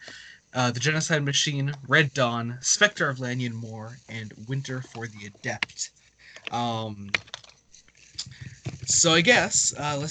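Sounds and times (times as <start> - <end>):
speech: 0.5 - 7.3, 8.9 - 10.0
typing on a computer keyboard: 6.4 - 7.6.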